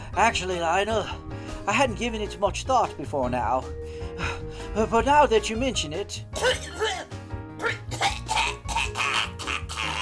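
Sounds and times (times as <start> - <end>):
low steady musical hum: 0.0 - 8.1
speech: 0.2 - 6.8
person coughing: 6.4 - 10.0.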